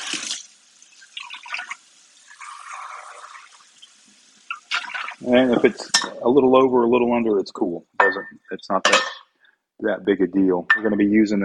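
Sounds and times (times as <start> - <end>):
about 2 cups of water poured into a 6-quart pot: 0.0 - 6.1
speech: 5.2 - 9.2, 9.8 - 11.4.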